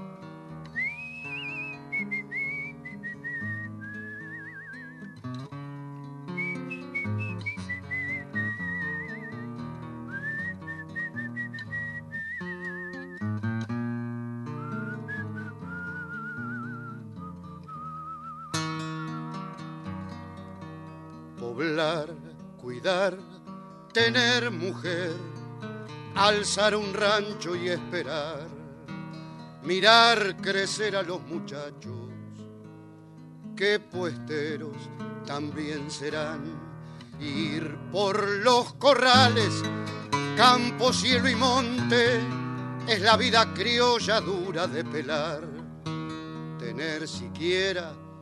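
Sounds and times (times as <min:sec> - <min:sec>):
person whistling a melody: 0:00.7 - 0:05.3, 0:06.3 - 0:13.5, 0:14.3 - 0:18.7
speech: 0:21.6 - 0:23.3, 0:24.0 - 0:25.3, 0:26.2 - 0:28.5, 0:29.7 - 0:32.0, 0:33.6 - 0:36.6, 0:37.2 - 0:45.5, 0:46.8 - 0:48.0.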